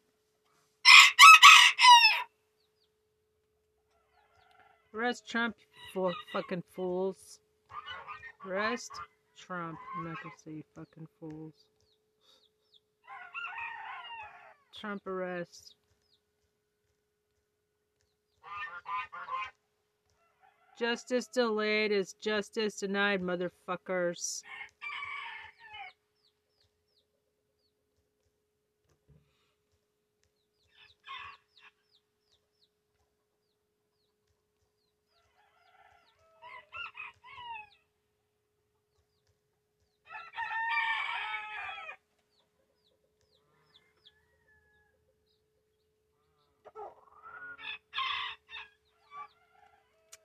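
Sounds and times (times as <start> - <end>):
chicken crowing and clucking: 0.8 - 2.4, 3.9 - 5.0, 13.0 - 14.7, 18.4 - 20.8, 24.4 - 26.0, 30.6 - 31.8, 34.8 - 37.9, 40.0 - 45.2, 46.4 - 50.2
speech: 4.9 - 7.4, 8.4 - 11.7, 14.8 - 15.8, 20.8 - 24.7.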